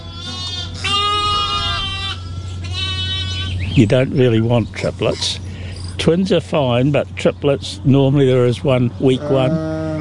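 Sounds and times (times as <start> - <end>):
ewe and young lambs bleating in a pen: 0.0 - 3.8, 9.0 - 10.0
steady low hum: 0.0 - 10.0
speech: 3.8 - 9.8.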